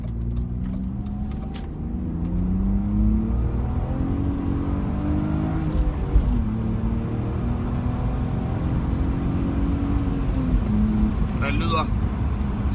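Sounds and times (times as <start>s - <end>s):
BMW six-cylinder car engine revving: 0.0s - 12.7s
speech: 11.6s - 12.0s.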